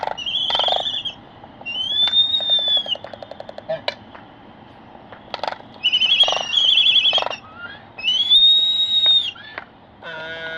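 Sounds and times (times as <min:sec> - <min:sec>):
Laysan albatross rising whistles on Midway Atoll: 0:00.1 - 0:03.2, 0:05.8 - 0:09.6.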